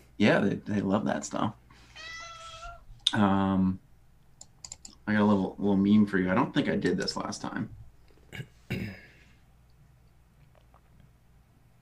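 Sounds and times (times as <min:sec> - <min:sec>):
speech: 0:00.2 - 0:02.1, 0:03.1 - 0:03.8, 0:05.1 - 0:09.0
cat meowing: 0:01.9 - 0:02.8.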